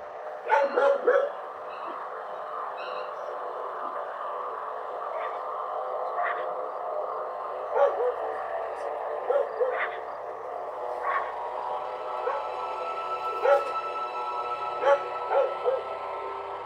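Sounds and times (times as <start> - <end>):
steady busy hum: 0.0 - 16.6
several dogs barking and yipping: 0.4 - 2.0, 7.7 - 8.4, 9.2 - 10.2, 11.0 - 11.4, 12.2 - 12.6, 13.4 - 13.8, 14.8 - 16.0.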